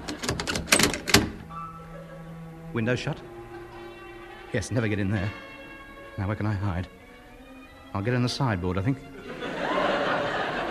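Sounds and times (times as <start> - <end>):
door being bolted shut: 0.0 - 1.5
laughter: 1.8 - 2.4, 9.1 - 10.6
speech: 2.8 - 3.3, 4.5 - 5.4, 6.2 - 7.0, 7.9 - 9.4.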